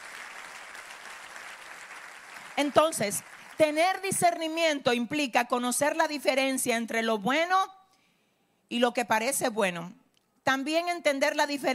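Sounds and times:
congregation applause at a church service: 0.0 - 4.0
speech: 2.6 - 7.8, 8.7 - 11.7.

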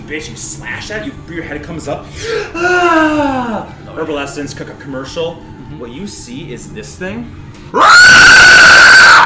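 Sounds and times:
speech: 0.1 - 8.4
person screeching imitating a creature: 2.5 - 3.7, 7.8 - 9.2.

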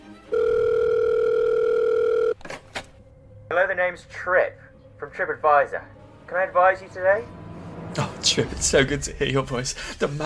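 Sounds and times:
telephone line tone while an operator puts a call through: 0.3 - 2.4
speech: 3.6 - 10.2.

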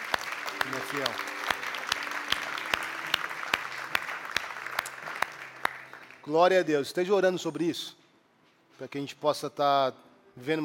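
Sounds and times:
church audience clapping: 0.0 - 6.4
speech: 0.9 - 1.3, 6.3 - 8.0, 8.8 - 10.6.

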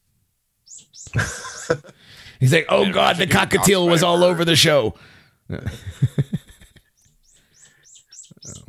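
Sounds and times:
finches chirping: 0.6 - 1.2, 6.9 - 8.6
speech: 0.9 - 6.2
laughter: 1.1 - 2.0, 5.5 - 6.9.

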